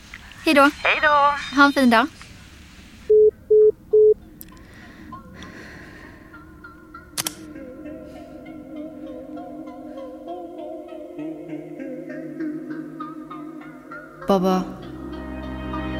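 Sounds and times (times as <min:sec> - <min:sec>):
speech: 0:00.5 - 0:02.2, 0:14.3 - 0:14.8
short loud electronic telephone dialing beeps: 0:03.1 - 0:04.2.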